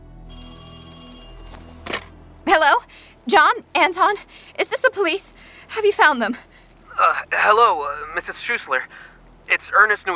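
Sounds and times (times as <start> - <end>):
bright metallic telephone bell ringing: 0.3 - 1.8
speech: 2.6 - 10.1.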